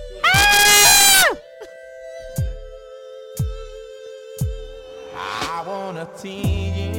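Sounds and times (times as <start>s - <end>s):
person letting out a high-pitched scream: 0.2s - 1.4s
speech: 6.1s - 6.9s.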